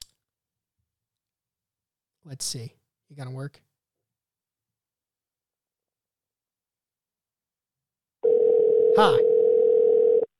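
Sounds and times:
speech: 2.3 - 3.7, 9.0 - 9.4
telephone ringing tone: 8.2 - 10.3.

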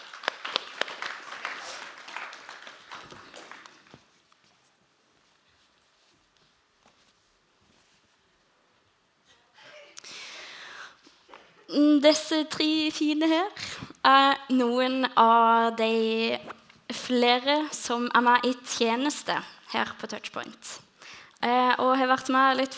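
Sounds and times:
audience clapping: 0.0 - 4.3
speech: 11.7 - 16.4, 17.1 - 20.7, 21.4 - 22.7.

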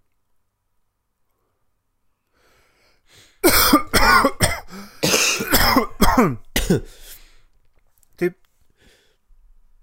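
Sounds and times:
person coughing: 3.4 - 7.2
speech: 6.2 - 7.0, 8.2 - 8.4.

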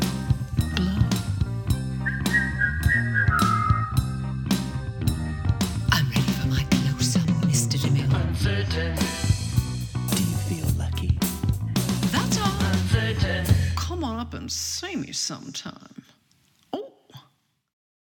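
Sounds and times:
busy musical backing with steady beats: 0.0 - 13.9
person whistling a high tone: 2.0 - 4.2
speech: 14.5 - 15.9.

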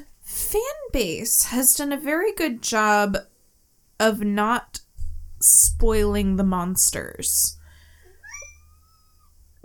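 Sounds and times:
speech: 0.5 - 3.3, 4.0 - 4.8, 5.4 - 7.6
cat meowing: 8.2 - 9.3.

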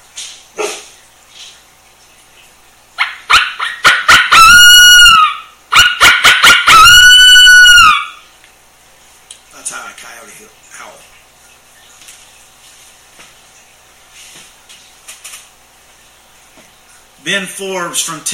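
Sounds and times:
high coyote howl blown on an upside-down mouth call: 3.0 - 8.2
speech: 17.3 - 18.3.

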